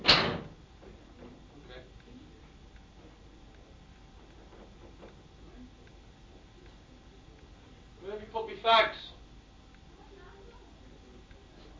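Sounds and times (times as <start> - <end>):
door shutting with a solid thud: 0.0 - 0.6
speech: 8.2 - 9.1.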